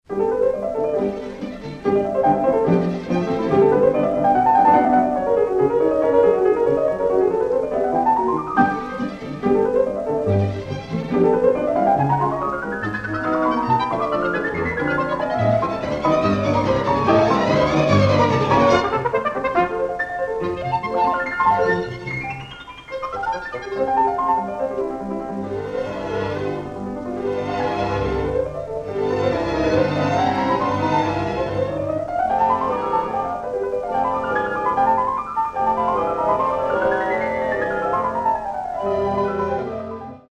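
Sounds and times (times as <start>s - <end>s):
fast light piano and orchestra concertino movement: 0.0s - 40.2s.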